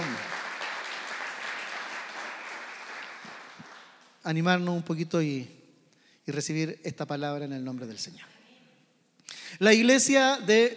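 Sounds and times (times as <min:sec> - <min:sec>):
large crowd applauding after a prayer: 0:00.0 - 0:04.2
speech: 0:04.2 - 0:05.6, 0:06.3 - 0:08.3, 0:09.6 - 0:10.7.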